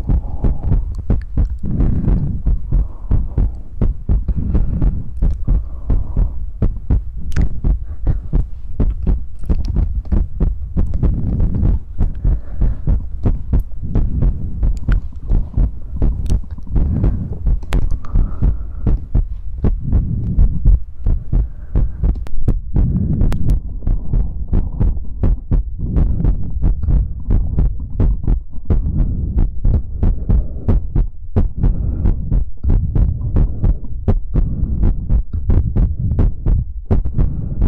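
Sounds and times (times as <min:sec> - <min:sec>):
faint low hum: 0:00.0 - 0:37.6
soft throbbing low thumps: 0:00.0 - 0:37.6
wet mouth clicks and smacks: 0:05.2 - 0:05.5, 0:07.2 - 0:07.6, 0:08.8 - 0:10.2, 0:14.7 - 0:15.5, 0:16.1 - 0:16.8, 0:17.5 - 0:18.2.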